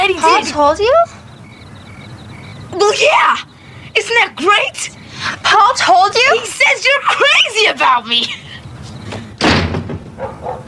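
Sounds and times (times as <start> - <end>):
speech: 0.0 - 1.2, 2.8 - 8.4
door slamming shut: 9.1 - 10.2.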